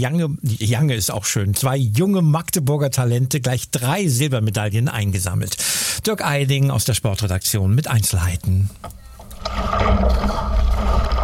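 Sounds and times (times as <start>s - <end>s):
speech: 0.0s - 11.2s
water swishing and rippling as a canoe is paddled on the Elbe river: 9.2s - 11.2s.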